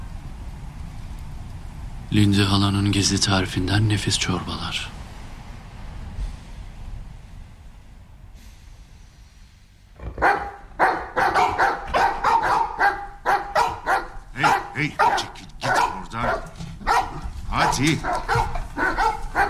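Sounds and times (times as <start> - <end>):
speech: 2.1 - 5.0
several dogs barking: 10.0 - 19.4.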